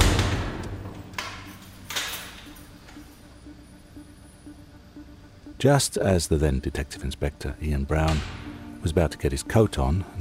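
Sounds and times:
heavy cell door slamming shut: 0.0 - 1.0, 8.1 - 8.5
speech: 5.6 - 10.1.

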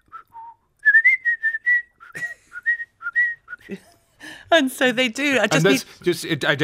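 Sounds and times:
person whistling a symphony theme to call dogs: 0.0 - 3.7
speech: 3.7 - 3.9, 4.5 - 6.6.

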